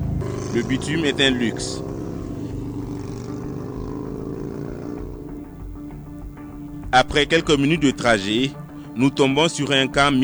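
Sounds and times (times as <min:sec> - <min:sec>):
motorcycle engine roaring on the road: 0:00.0 - 0:06.9
speech: 0:00.5 - 0:01.9, 0:06.9 - 0:10.2.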